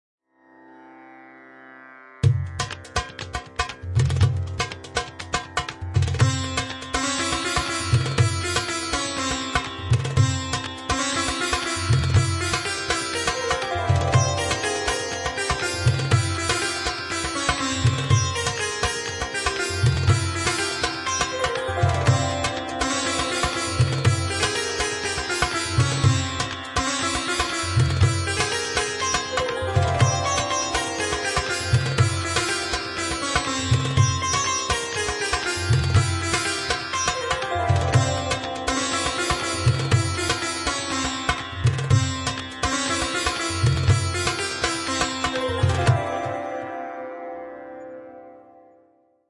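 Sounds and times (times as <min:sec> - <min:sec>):
sitar in Indian Bollywood music: 0:00.2 - 0:49.2
tanpura in Indian Bollywood music: 0:00.3 - 0:49.0
sarangi in Indian Bollywood music: 0:00.8 - 0:48.5.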